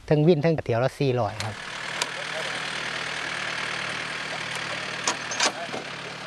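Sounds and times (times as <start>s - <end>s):
speech: 0.1s - 1.7s
tractor engine idling, hired to winch logs: 1.3s - 6.2s
brief clanks: 5.0s - 5.8s.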